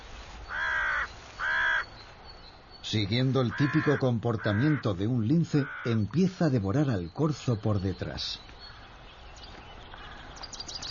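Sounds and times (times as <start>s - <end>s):
crows or magpies cawing: 0.4s - 2.0s, 3.4s - 6.1s, 8.6s - 9.0s, 9.9s - 10.4s
speech: 2.9s - 8.5s.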